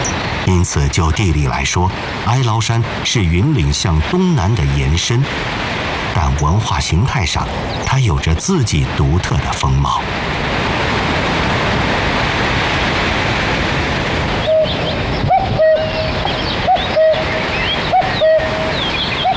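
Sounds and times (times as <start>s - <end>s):
steady rushing background in the Ailao Mountains, China: 0.0s - 19.3s
speech: 0.5s - 10.8s
cuckoo calling in two-note pairs in the mountain countryside of the Ailao Mountains, China: 14.4s - 19.3s.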